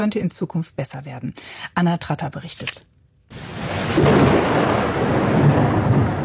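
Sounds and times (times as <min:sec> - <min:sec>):
speech: 0:00.0 - 0:02.9, 0:03.9 - 0:05.1
deep rumble of thunder in a mountain thunderstorm: 0:03.3 - 0:06.2
heavy rain pouring in a mountain thunderstorm: 0:03.3 - 0:06.2.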